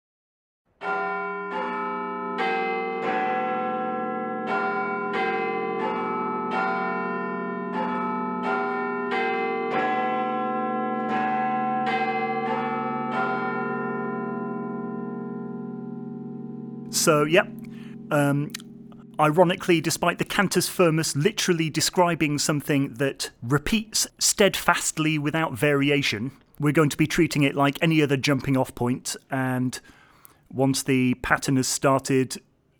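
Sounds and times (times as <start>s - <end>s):
church bells ringing a stately melody: 0.8s - 22.1s
speech: 17.0s - 32.5s.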